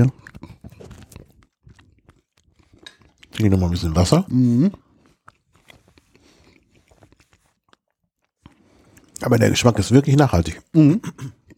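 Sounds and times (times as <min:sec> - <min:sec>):
speech: 0:00.0 - 0:00.2, 0:03.4 - 0:04.8, 0:09.2 - 0:11.4
biting and chewing bread between tastes of cheese: 0:00.0 - 0:09.2.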